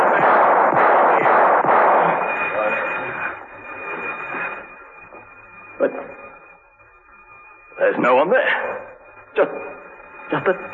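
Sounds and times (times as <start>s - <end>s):
warning gunshots in a passageway: 0.0s - 2.7s
dense noisy din: 0.0s - 10.7s
steady high whine: 0.0s - 10.7s
speech: 8.0s - 8.8s, 9.4s - 9.7s, 10.3s - 10.7s.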